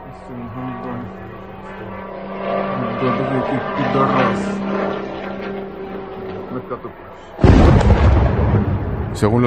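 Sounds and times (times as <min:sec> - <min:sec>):
city soundscape: 0:00.0 - 0:09.4
low steady droning hum: 0:00.0 - 0:09.4
loud explosion blast in a city: 0:07.4 - 0:09.4.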